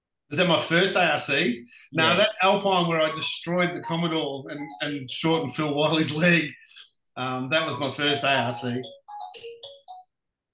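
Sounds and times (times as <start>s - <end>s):
speech: 0.3s - 9.0s
phone ringtone: 3.0s - 6.2s, 7.6s - 10.3s.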